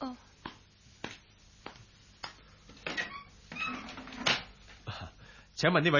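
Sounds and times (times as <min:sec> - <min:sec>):
door being opened: 0:02.8 - 0:04.5
speech: 0:05.6 - 0:05.9.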